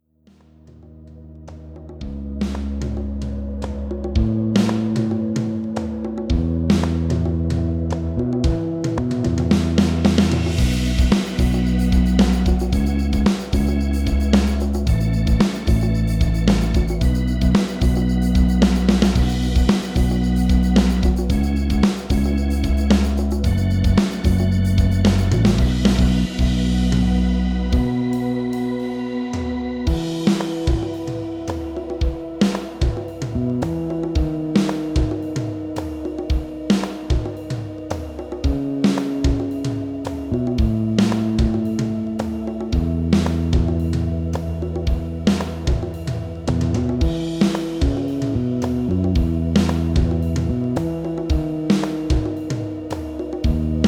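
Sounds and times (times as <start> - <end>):
rhythm: 1.6 - 53.8.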